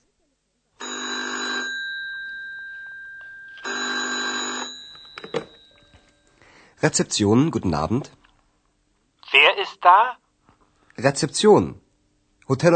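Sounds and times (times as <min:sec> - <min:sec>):
telephone ringing with an electronic trill at a hotel reception desk: 0:00.8 - 0:06.4
speech: 0:06.8 - 0:08.2, 0:09.8 - 0:10.2, 0:11.0 - 0:11.8, 0:12.5 - 0:12.7.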